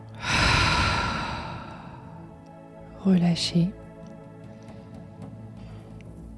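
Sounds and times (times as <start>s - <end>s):
forceful exhale blown out through the mouth: 0.2s - 2.2s
speech: 3.0s - 3.8s.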